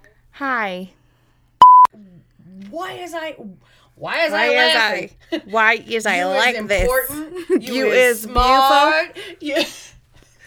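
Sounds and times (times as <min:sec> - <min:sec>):
speech: 0:00.4 - 0:01.0, 0:02.7 - 0:09.9
phone on Do Not Disturb ringing with a short electronic tone: 0:01.6 - 0:01.9
laughter: 0:04.1 - 0:10.4.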